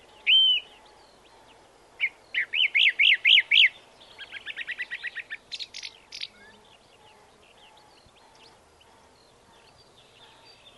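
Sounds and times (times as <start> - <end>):
faint background hiss: 0.0 - 10.7
song thrush song: 0.0 - 10.7.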